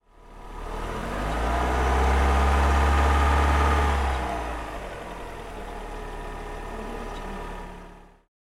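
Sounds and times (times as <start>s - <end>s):
old petrol car accelerating: 0.2s - 8.2s.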